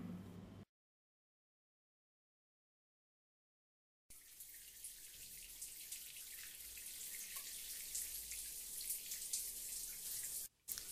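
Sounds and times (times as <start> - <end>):
running water of a shower: 4.1 - 10.9.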